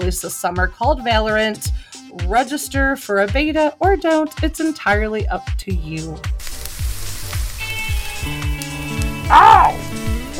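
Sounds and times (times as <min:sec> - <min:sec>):
speech: 0:00.1 - 0:06.4, 0:09.3 - 0:09.8
food frying in a pan: 0:06.4 - 0:10.3.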